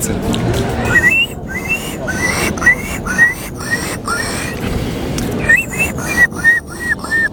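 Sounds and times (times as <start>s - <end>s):
speech: 0.0s - 0.6s
laughter: 0.0s - 7.3s
contestant mimicking a gull in a bird-call imitation contest: 0.9s - 4.6s, 5.2s - 7.3s.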